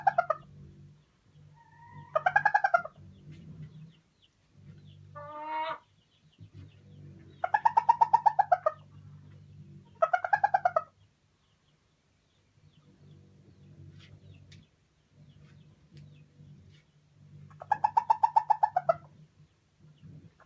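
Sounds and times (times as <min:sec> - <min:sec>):
Araucana hen cackling while laying an egg: 0:00.0 - 0:00.6, 0:01.5 - 0:03.1, 0:05.1 - 0:06.0, 0:07.3 - 0:09.0, 0:09.8 - 0:11.0, 0:17.5 - 0:19.2
steady low hum: 0:00.0 - 0:20.4.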